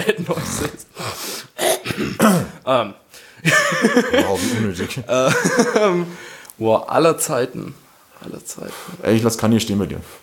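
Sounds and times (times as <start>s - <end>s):
speech: 0.0s - 0.8s, 2.7s - 10.2s
person clearing throat: 0.0s - 0.9s, 1.6s - 2.6s
laughter: 3.4s - 6.2s.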